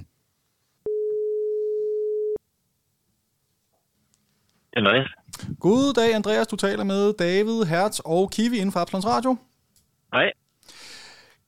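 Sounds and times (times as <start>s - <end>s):
telephone ringing tone while placing a call: 0.9s - 2.4s
speech: 4.8s - 9.5s, 10.1s - 10.8s.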